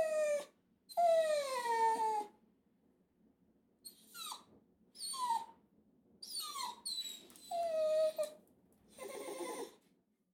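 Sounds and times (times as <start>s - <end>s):
dog whining: 0.0s - 2.3s, 3.9s - 5.6s, 6.2s - 9.8s.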